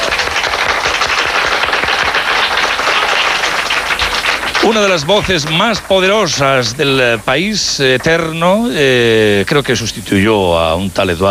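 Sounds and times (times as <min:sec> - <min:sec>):
audience applause welcoming a guest: 0:00.0 - 0:09.8
speech: 0:04.7 - 0:11.2.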